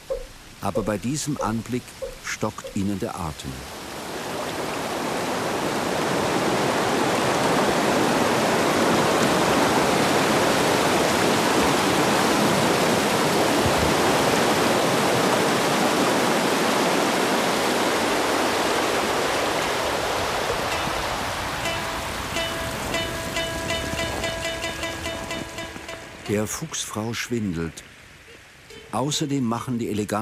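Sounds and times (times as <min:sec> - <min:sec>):
faint tonal ringing: 0:00.0 - 0:03.0, 0:20.7 - 0:26.7
waterfall with an ice-covered rock ledge roaring: 0:00.0 - 0:30.2
speech: 0:00.6 - 0:03.8, 0:26.4 - 0:28.0, 0:28.9 - 0:30.2.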